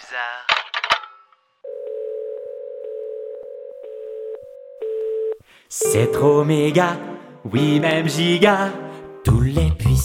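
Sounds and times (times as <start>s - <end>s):
speech: 0.1s - 0.7s, 5.7s - 10.0s
telephone dial tone: 1.6s - 5.4s.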